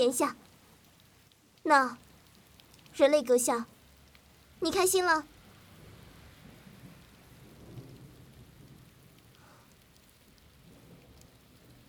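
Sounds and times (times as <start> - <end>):
speech: 0.0 - 0.4, 1.6 - 2.0, 3.0 - 3.7, 4.6 - 5.3
steady rain pouring: 0.0 - 11.8
thunder: 4.6 - 11.8.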